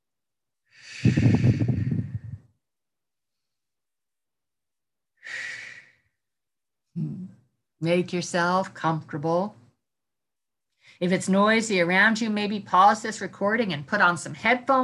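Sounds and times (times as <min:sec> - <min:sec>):
slow deep breaths: 0:00.6 - 0:02.6, 0:05.2 - 0:06.3
speech: 0:01.0 - 0:01.3, 0:07.8 - 0:09.6, 0:11.0 - 0:14.8.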